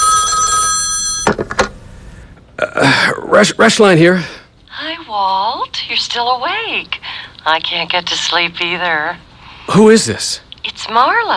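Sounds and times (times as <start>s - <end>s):
hotel room telephone ringing with bright electronic tone in Milwaukee: 0.0s - 1.4s
speech: 3.3s - 4.4s, 5.1s - 11.3s.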